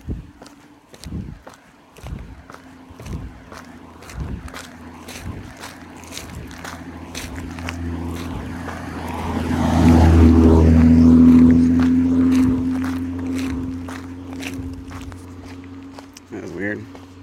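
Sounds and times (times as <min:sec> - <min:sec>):
wind buffeting the microphone: 0:00.0 - 0:15.3
steady footsteps: 0:00.0 - 0:17.2
vehicle rushing past on road: 0:02.0 - 0:16.3.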